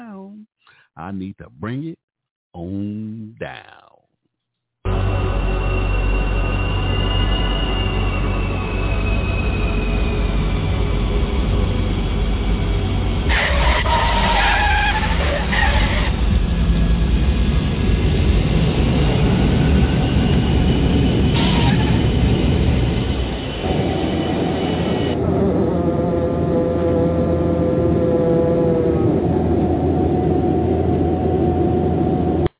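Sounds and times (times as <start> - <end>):
speech: 1.0 - 3.9
high screeching bursts: 4.9 - 11.8, 13.3 - 16.3, 21.3 - 22.6
jet engines roaring on airplane landing: 4.9 - 32.5
aircraft wheels rumbling on runway: 8.0 - 32.4.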